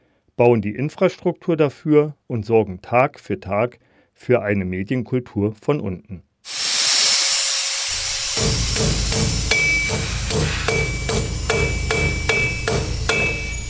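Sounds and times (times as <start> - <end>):
speech: 0.4 - 6.3
ringing hammer blows in a metal and electronics workshop: 6.8 - 13.6.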